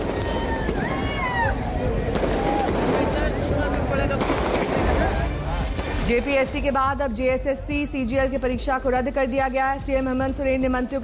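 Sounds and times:
noisy outdoor crowd cheering: 0:00.0 - 0:03.8
fireworks crackling and popping during student celebration: 0:00.0 - 0:06.7
speech: 0:06.1 - 0:11.0.

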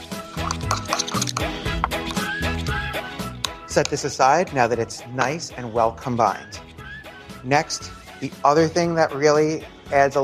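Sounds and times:
garlic mixture stirred and mashed in a bowl: 0:00.0 - 0:04.0
speech: 0:03.7 - 0:06.6, 0:07.4 - 0:10.2.

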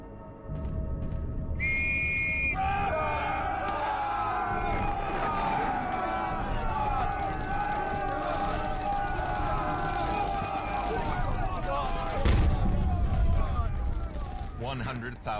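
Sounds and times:
rumbling battle noise: 0:00.5 - 0:15.3
officer's shrill whistle blast signalling the attack: 0:01.6 - 0:02.7
crowds shouting: 0:01.6 - 0:14.7.

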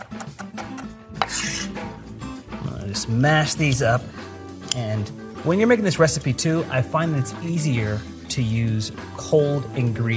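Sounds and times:
knife mincing garlic with scraping: 0:00.0 - 0:01.7
speech: 0:02.9 - 0:10.1.

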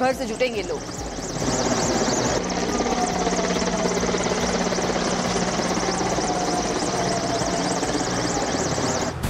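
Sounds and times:
speech: 0:00.0 - 0:02.0
helicopter flying overhead showering flowers during Independence Day rehearsal in India: 0:00.0 - 0:09.2.

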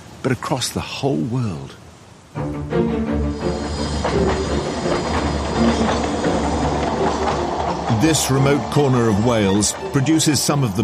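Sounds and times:
speech: 0:00.2 - 0:03.0, 0:08.0 - 0:10.8
train rumbling along a railway in the hills around Blaenau Ffestiniog Wales: 0:03.3 - 0:10.8.

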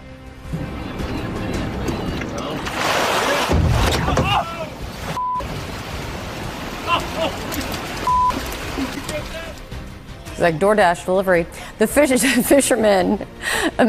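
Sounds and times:
fishing boat engine: 0:00.0 - 0:13.0
waves: 0:00.6 - 0:10.7
splashing spray and rushing water: 0:01.7 - 0:10.6
whale slamming into a fishing boat off Long Island: 0:02.7 - 0:04.4
short beeps: 0:05.2 - 0:05.5, 0:08.1 - 0:08.4
laughter: 0:06.8 - 0:09.6, 0:12.0 - 0:13.8
speech: 0:10.4 - 0:13.8.

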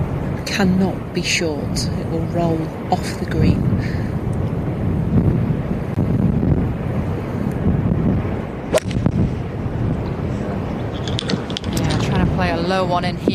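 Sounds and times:
strong wind blowing across a golf course: 0:00.0 - 0:13.3
speech: 0:00.5 - 0:04.2, 0:12.7 - 0:13.3.

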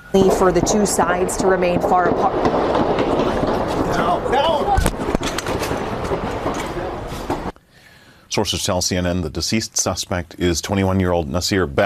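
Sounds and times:
indistinct voices outdoors: 0:00.0 - 0:07.5
speech: 0:00.1 - 0:03.2, 0:08.4 - 0:11.8
volley of gunshots: 0:00.2 - 0:07.5.

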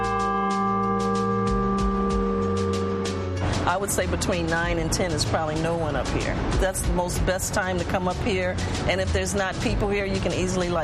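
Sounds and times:
large friendship bell being struck: 0:00.0 - 0:04.4
speech: 0:03.7 - 0:10.8.

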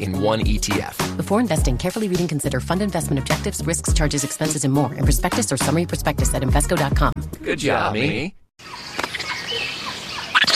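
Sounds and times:
speech: 0:00.0 - 0:08.8
monkey giving high squeaky chirps and chatter: 0:08.6 - 0:10.5.

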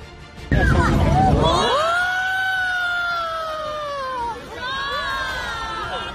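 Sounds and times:
loud rumbling burst of a satellite rocket exploding after liftoff: 0:00.5 - 0:02.0
crowd yelling and crying out in alarm at a rocket explosion: 0:00.5 - 0:06.1.

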